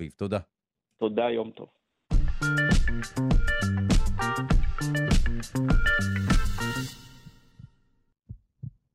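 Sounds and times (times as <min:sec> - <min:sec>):
speech: 0:00.0 - 0:01.8, 0:02.4 - 0:04.0, 0:04.8 - 0:07.0
heavy rhythmic heartbeat pulses: 0:07.6 - 0:08.9.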